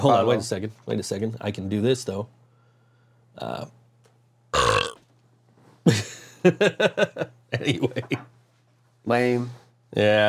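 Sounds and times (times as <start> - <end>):
speech: 0.0 - 2.4, 3.4 - 3.8, 5.8 - 8.4, 9.0 - 10.2
short burps forced on command: 4.6 - 5.0.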